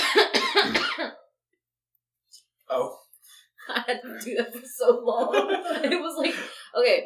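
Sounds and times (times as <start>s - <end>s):
harsh coughing: 0.0s - 1.3s
laughter: 3.7s - 6.6s
speech: 3.9s - 7.0s.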